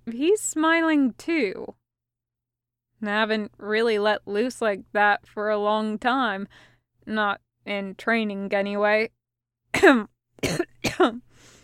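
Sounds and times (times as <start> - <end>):
speech: 0.1 - 1.8, 3.0 - 11.3
man coughing: 9.8 - 11.2
raspy breath: 11.3 - 11.6.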